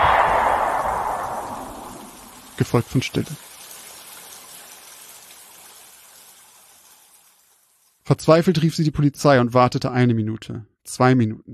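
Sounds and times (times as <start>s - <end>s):
single loud gunshot with rumble: 0.0s - 2.6s
speech: 2.6s - 3.4s, 8.1s - 11.5s.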